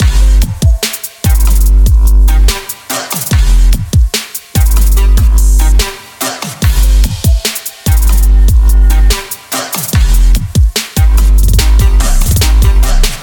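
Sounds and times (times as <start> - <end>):
music: 0.0 - 13.2.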